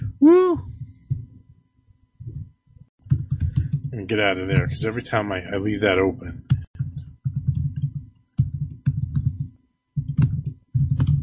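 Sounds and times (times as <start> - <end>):
rapid typing on a computer keyboard: 3.0 - 3.9, 6.5 - 11.2
speech: 4.0 - 6.5.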